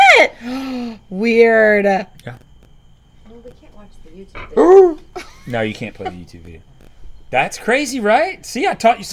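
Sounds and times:
faint steady hum: 0.0s - 9.1s
speech: 1.2s - 2.5s, 3.3s - 6.7s, 7.3s - 9.1s
person imitating a dog's bark while inhaling: 4.5s - 5.0s.

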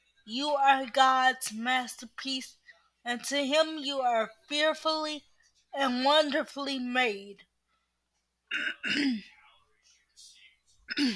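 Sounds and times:
speech: 0.3s - 7.5s, 8.5s - 9.4s, 11.0s - 11.1s
person clearing throat: 8.5s - 9.3s, 10.9s - 11.1s.

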